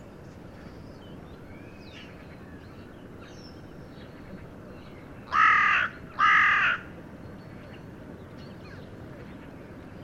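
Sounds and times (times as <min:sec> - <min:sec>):
carrion crow giving harsh drawn-out caws: 0:05.3 - 0:06.9.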